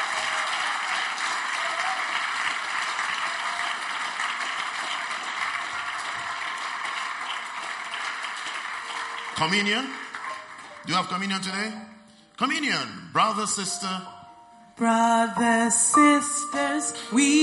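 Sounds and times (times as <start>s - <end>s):
audience applauding: 0.0s - 11.7s
speech: 9.4s - 10.0s, 10.8s - 14.2s, 14.8s - 17.4s.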